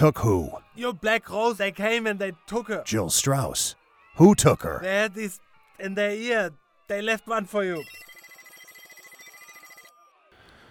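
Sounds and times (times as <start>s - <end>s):
speech: 0.0s - 8.1s
telephone ringing with electronic warble: 7.7s - 10.1s.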